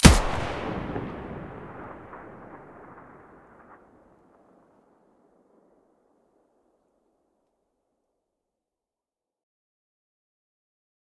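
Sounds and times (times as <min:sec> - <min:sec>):
weapons firing with muzzle blast in stereo: 0:00.0 - 0:03.8.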